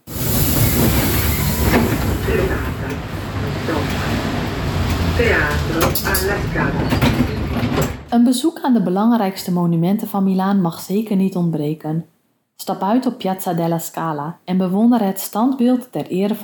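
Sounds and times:
train rumbling through a busy railway station in Milan Italy: 0.0 - 8.2
brief high squeals: 0.4 - 7.6
scattered clanks: 0.4 - 8.1
voices murmuring faintly and echoing: 2.0 - 7.6
speech: 5.2 - 16.4.

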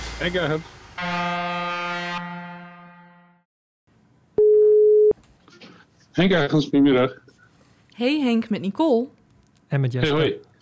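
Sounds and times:
speech: 0.2 - 1.7, 6.2 - 7.2, 8.0 - 10.5
telephone ringback tone while calling someone: 4.4 - 5.1.

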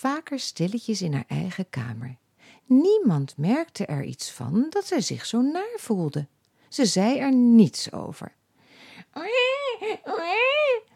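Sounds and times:
speech: 0.0 - 8.4, 9.1 - 10.9
baby crying: 9.1 - 10.9.

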